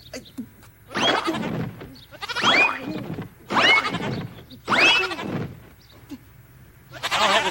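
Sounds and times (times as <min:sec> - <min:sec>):
sheep bleating while jumping through: 0:00.9 - 0:05.6, 0:06.9 - 0:07.4.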